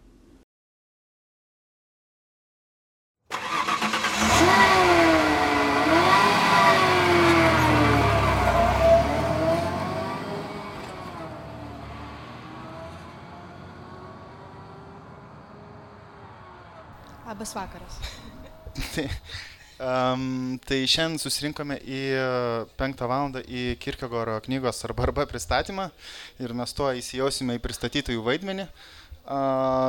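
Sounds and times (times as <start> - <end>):
Ford Ranger pickup engine starting and running: 3.3 - 19.6
speech: 17.4 - 29.8
laughter: 18.0 - 19.8.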